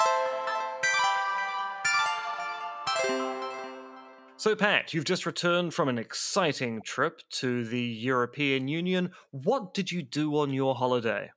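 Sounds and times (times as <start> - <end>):
bright chime played as a transition: 0.0 - 4.4
speech: 4.4 - 11.3.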